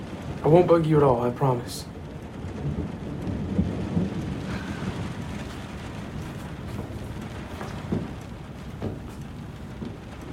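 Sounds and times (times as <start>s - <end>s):
heavy rain pouring in a dense hissing wash: 0.0s - 10.3s
low rumbles of thunder rolling: 0.0s - 10.3s
speech: 0.4s - 1.9s, 2.6s - 3.0s.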